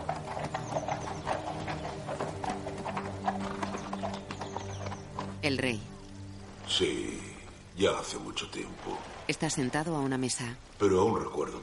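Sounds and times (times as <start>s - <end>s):
horse hooves clip-clopping in a courtyard as a rider rides away: 0.0s - 6.6s
speech: 5.4s - 5.9s, 6.7s - 11.6s.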